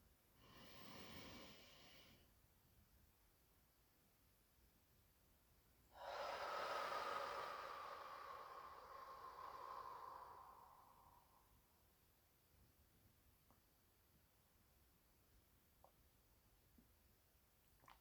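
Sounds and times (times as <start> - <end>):
slow deep breathing: 0.4 - 2.3, 5.9 - 11.8.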